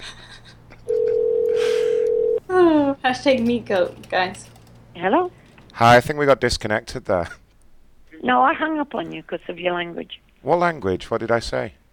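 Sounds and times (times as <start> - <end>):
low noise: 0.0 - 11.9
telephone dial tone while placing a call: 0.9 - 2.4
speech: 3.1 - 4.4, 5.0 - 7.4, 8.2 - 11.8.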